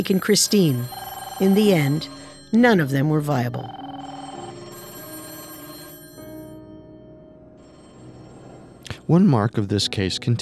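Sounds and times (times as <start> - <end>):
speech: 0.0 - 3.8, 9.1 - 10.4
old-style telephone bells at a police department ringing: 0.0 - 6.6, 7.6 - 8.8.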